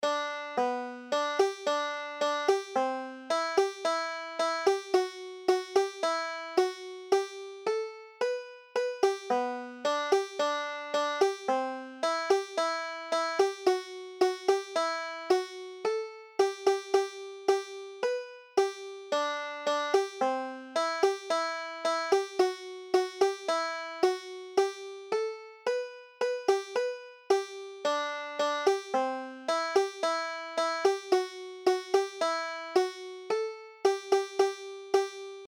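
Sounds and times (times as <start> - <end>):
banjo: 0.0 - 35.4.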